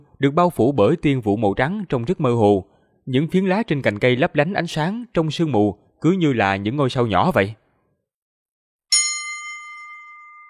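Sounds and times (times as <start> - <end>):
speech: 0.2 - 7.6
bell-like chime from a flower turned into a magical artifact: 8.9 - 10.4.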